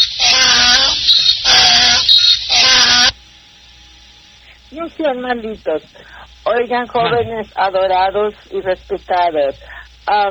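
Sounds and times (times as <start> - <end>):
donkey braying: 0.0 - 3.2
speech: 4.9 - 10.2.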